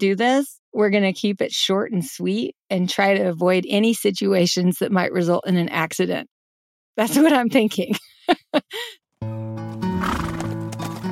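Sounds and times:
speech: 0.0 - 6.3, 7.0 - 10.2
horse whinnying: 10.0 - 10.6
horse snorting: 10.0 - 10.7.

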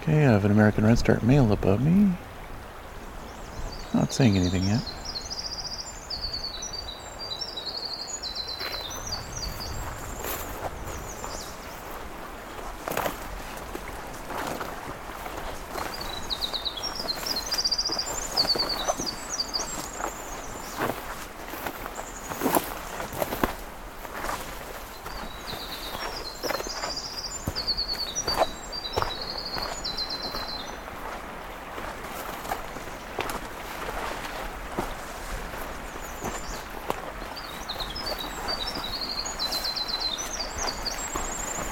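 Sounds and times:
steady rush of flowing water at a stream crossing: 0.0 - 41.6
speech: 0.1 - 2.3, 3.9 - 5.0
winter wren singing at a stream crossing: 2.8 - 13.0, 15.2 - 23.6, 24.2 - 31.2, 35.5 - 41.6.

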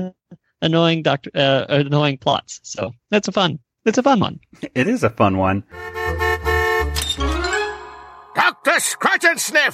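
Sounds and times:
speech: 0.0 - 6.2, 8.4 - 9.7
horn honking: 5.7 - 8.1.

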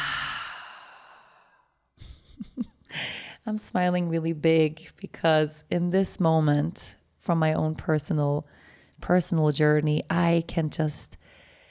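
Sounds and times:
full inhale and exhale: 0.0 - 1.7, 11.2 - 11.6
speech: 3.5 - 11.4.

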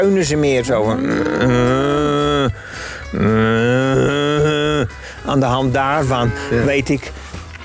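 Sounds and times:
speech: 0.0 - 4.2, 5.3 - 7.2
cow mooing: 0.8 - 2.5, 3.2 - 4.9, 5.9 - 6.9.

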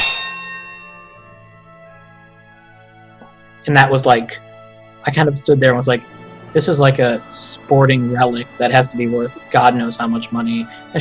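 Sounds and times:
racetrack starter's bell struck: 0.0 - 1.8
speech: 3.6 - 10.9.

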